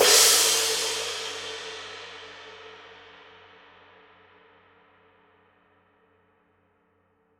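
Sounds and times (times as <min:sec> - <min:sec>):
dark crash ride cymbal: 0:00.0 - 0:02.7.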